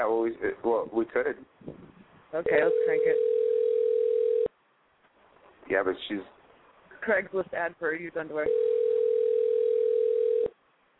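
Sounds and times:
speech: 0:00.0 - 0:03.3, 0:05.7 - 0:06.4, 0:07.0 - 0:08.7
telephone ringing tone on an unanswered call: 0:02.5 - 0:04.5, 0:08.4 - 0:10.6.

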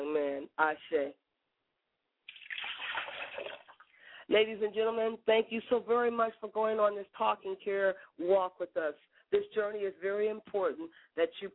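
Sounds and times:
speech: 0:00.6 - 0:01.2, 0:04.3 - 0:11.5
liquid poured out as a libation during a ritual: 0:02.3 - 0:04.0.

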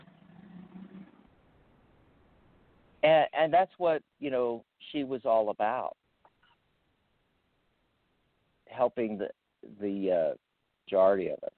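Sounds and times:
motorcycle rumbling past a patio: 0:00.0 - 0:01.3
speech: 0:03.0 - 0:06.0, 0:08.8 - 0:11.5.

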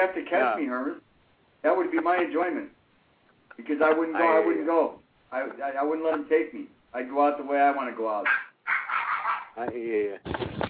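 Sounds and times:
speech: 0:00.0 - 0:02.8, 0:03.6 - 0:08.5, 0:09.6 - 0:10.5
female dachshund puppy barking in high-pitched squeaky yaps: 0:08.2 - 0:09.6.

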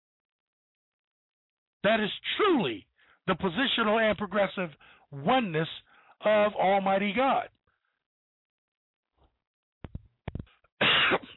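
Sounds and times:
speech: 0:01.8 - 0:07.6
person coughing harshly with short throaty bursts: 0:10.8 - 0:11.3.

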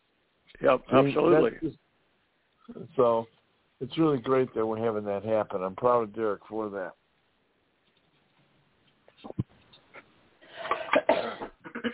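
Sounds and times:
speech: 0:00.6 - 0:01.8, 0:02.7 - 0:07.0
person coughing: 0:10.6 - 0:11.9
throat clearing: 0:10.6 - 0:11.9.

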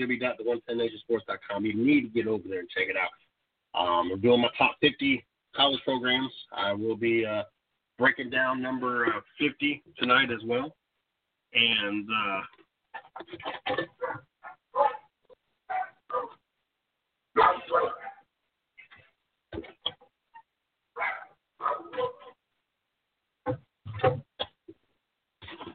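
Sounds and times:
speech: 0:00.0 - 0:10.8, 0:11.5 - 0:12.6, 0:13.2 - 0:15.0, 0:23.5 - 0:24.2
dog barking: 0:14.0 - 0:15.1, 0:15.7 - 0:16.4, 0:17.4 - 0:18.3, 0:21.0 - 0:22.4.

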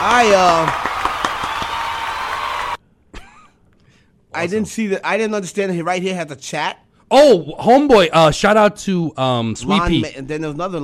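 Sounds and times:
speech: 0:00.0 - 0:00.9, 0:04.4 - 0:10.8
applause and scattered clapping: 0:00.0 - 0:02.8.

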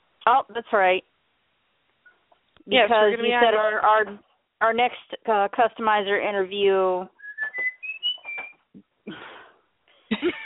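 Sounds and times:
speech: 0:00.2 - 0:01.1, 0:02.6 - 0:07.2
pet bird whistling a commercial jingle: 0:07.2 - 0:08.6
laughter: 0:10.1 - 0:10.4.

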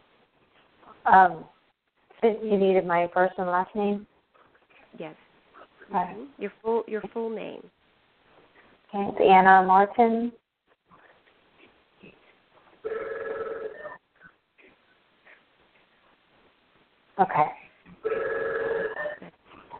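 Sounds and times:
speech: 0:01.1 - 0:01.5, 0:02.2 - 0:04.1, 0:04.9 - 0:05.2, 0:05.9 - 0:07.8, 0:08.9 - 0:10.4, 0:17.2 - 0:18.2
telephone ringing: 0:12.8 - 0:14.0, 0:18.0 - 0:19.2.

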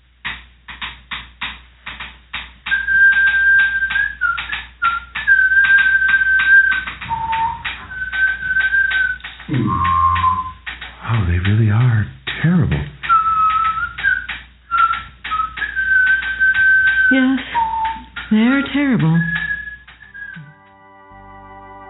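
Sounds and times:
clattering percussion beat of sharp repeated knocks: 0:00.0 - 0:20.5
penny whistle playing long wavering notes: 0:02.7 - 0:11.2, 0:13.0 - 0:21.8.

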